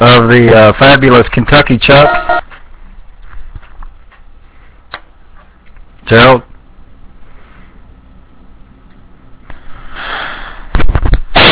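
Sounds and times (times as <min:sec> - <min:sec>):
speech: 0:00.0 - 0:02.4, 0:06.1 - 0:06.5
breathy sniff: 0:09.5 - 0:10.7.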